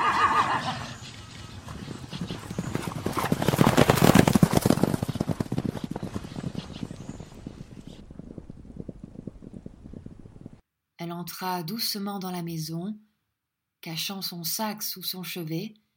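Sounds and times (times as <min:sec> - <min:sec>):
horse hooves clip-clopping as the horse gallops away: 0:00.0 - 0:10.6
speech: 0:11.4 - 0:13.1, 0:13.8 - 0:15.8.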